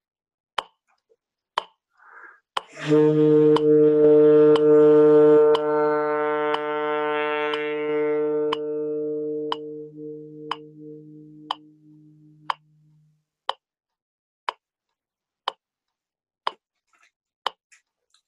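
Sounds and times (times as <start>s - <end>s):
metronome ticking: 2.6s - 6.7s, 7.5s - 13.6s
wind instrument long sustained note in a dynamics control exercise: 2.7s - 13.1s.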